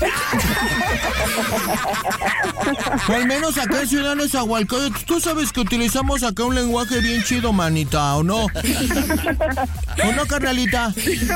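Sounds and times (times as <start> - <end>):
laughter: 0.0 - 6.0, 8.1 - 11.3
speech: 0.0 - 11.3
horse whinnying: 6.7 - 7.6.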